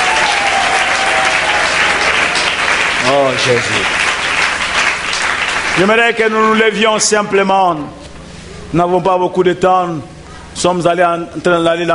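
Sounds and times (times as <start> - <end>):
church congregation applauding during a worship service: 0.0 - 7.1
speech: 3.1 - 4.1, 5.8 - 8.0, 8.7 - 11.9.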